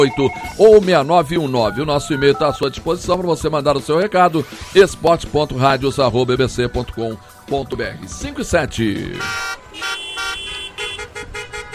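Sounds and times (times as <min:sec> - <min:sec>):
speech: 0:00.0 - 0:10.0
car horn honking: 0:09.2 - 0:11.7.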